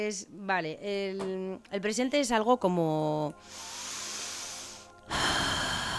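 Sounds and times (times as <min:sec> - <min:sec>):
speech: 0:00.0 - 0:03.9
deep breath being taken in: 0:03.4 - 0:05.9.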